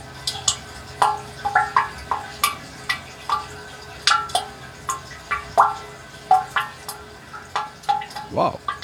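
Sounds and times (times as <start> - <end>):
water dripping inside a spring water catchment: 0.0 - 8.8.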